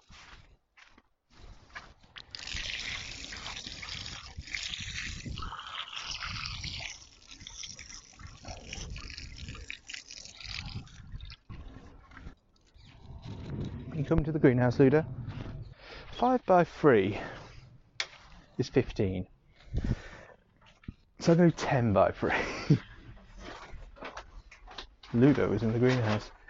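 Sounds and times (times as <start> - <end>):
water running from a tap while washing hands: 2.4 - 11.4
speech: 14.1 - 15.2, 16.2 - 17.4, 18.6 - 19.9, 21.2 - 22.9, 25.2 - 26.4.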